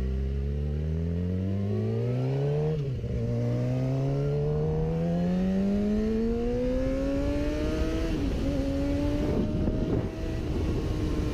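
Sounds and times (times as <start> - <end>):
low road rumble: 0.0 - 11.3
sport motorcycle engine accelerating hard past a car: 0.0 - 11.3.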